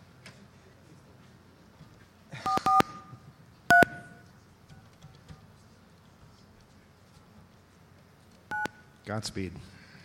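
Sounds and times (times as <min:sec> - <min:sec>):
touch-tone keypad beeps as a phone number is dialed: 0:02.5 - 0:03.1, 0:03.7 - 0:04.2, 0:08.5 - 0:08.8
speech: 0:09.1 - 0:09.8.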